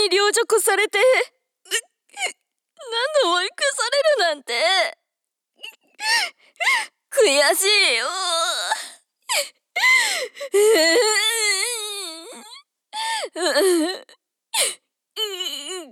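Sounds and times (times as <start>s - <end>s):
speech: 0.3s - 5.0s, 6.0s - 11.8s, 13.0s - 15.9s
girl crying with high-pitched wailing sobs: 6.0s - 15.9s.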